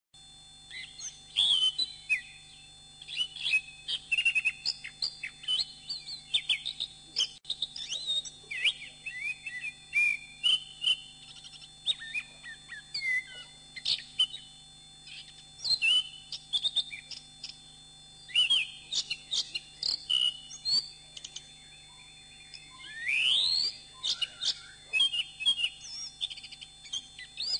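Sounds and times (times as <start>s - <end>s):
faint continuous hum: 0.2s - 27.5s
bird song of whistled notes and scratchy chatter: 0.5s - 27.5s.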